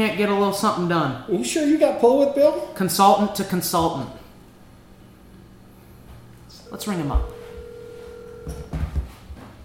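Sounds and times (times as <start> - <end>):
speech: 0.0 - 4.2, 6.7 - 7.4, 8.4 - 9.0
telephone line tone sweeping downward while a call is placed: 6.6 - 8.9.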